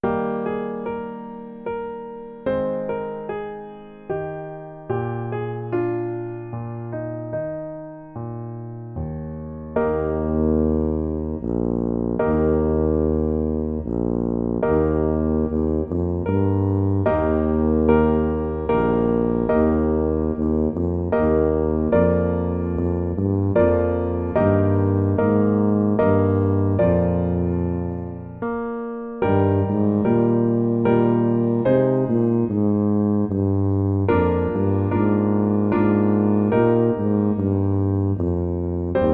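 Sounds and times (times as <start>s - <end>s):
tuba melody: 0.0s - 39.1s.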